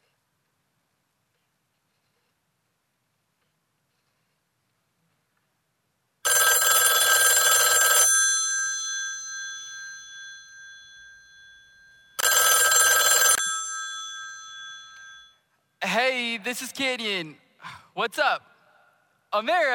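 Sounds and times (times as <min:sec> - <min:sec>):
telephone ringing as a call is placed: 0:06.2 - 0:15.5
speech: 0:15.9 - 0:18.5, 0:19.3 - 0:19.7.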